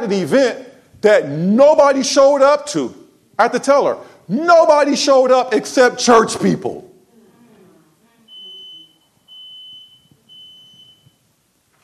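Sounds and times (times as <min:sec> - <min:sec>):
speech: 0:00.0 - 0:06.9
fire alarm beeping: 0:08.3 - 0:11.3.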